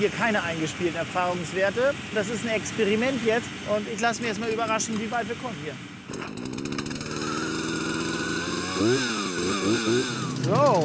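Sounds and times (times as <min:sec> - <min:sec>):
speech: 0:00.0 - 0:06.5, 0:08.8 - 0:10.8
loud steady tractor engine drone: 0:05.8 - 0:10.8
revving whining chainsaw motor: 0:06.1 - 0:10.8.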